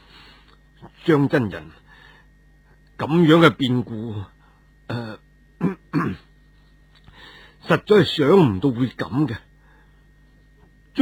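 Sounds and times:
speech: 1.0s - 1.8s, 3.0s - 4.3s, 4.9s - 5.2s, 6.0s - 6.3s, 7.6s - 9.5s
soft cough from a monk: 5.6s - 6.3s.

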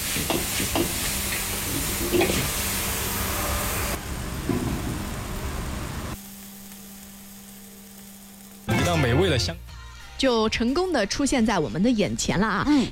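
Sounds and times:
beef with soy sauce and coriander roots sizzling in a hot wok: 0.0s - 10.3s
speech: 8.9s - 9.6s, 10.2s - 12.9s.

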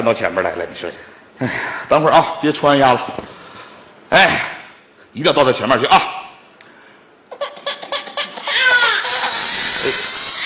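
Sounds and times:
speech: 0.0s - 3.3s, 4.1s - 4.5s, 5.2s - 6.2s
hungry baby crying: 7.3s - 10.4s.

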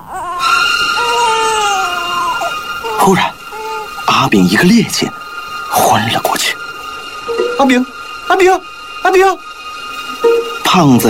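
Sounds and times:
infant crying: 0.0s - 4.0s
speech: 3.1s - 3.4s, 4.2s - 5.2s, 5.9s - 6.6s, 7.6s - 9.5s, 10.2s - 11.0s.

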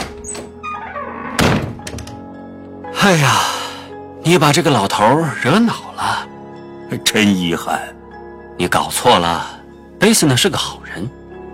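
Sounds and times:
box lid slamming shut: 1.4s - 2.0s
speech: 3.0s - 3.6s, 4.2s - 6.2s, 6.9s - 7.9s, 8.6s - 11.2s.

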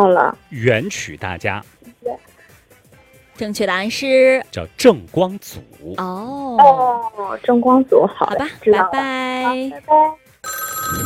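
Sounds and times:
speech: 0.0s - 2.3s, 3.4s - 11.0s
telephone ringing as a caller's line connects during a phone-in quiz: 10.4s - 11.0s.

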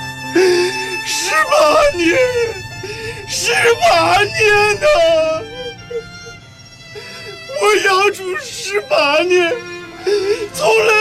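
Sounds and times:
man squatting on the ground sobbing: 0.2s - 10.9s
speech: 1.4s - 2.6s, 3.3s - 5.5s, 7.6s - 10.9s.

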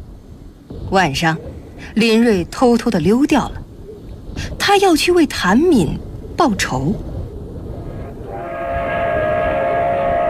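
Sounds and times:
express train heavy rumble passing through a station at night: 0.0s - 10.2s
speech: 0.8s - 3.6s, 4.4s - 7.1s
sustained express train horn tone: 8.2s - 10.2s.

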